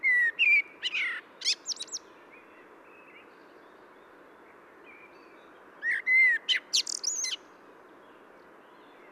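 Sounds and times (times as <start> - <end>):
common blackbird Turdus merula singing: 0.0 - 4.1, 4.8 - 7.4.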